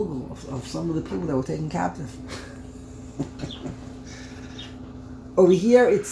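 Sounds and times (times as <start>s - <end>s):
speech: 0.0s - 2.5s, 5.4s - 6.1s
steady low hum: 0.0s - 6.1s
bird chirps outside: 3.2s - 5.0s.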